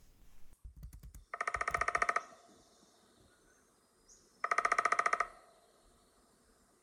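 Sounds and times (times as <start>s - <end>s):
Downy Woodpecker drumming: 1.2s - 2.4s, 4.4s - 5.5s.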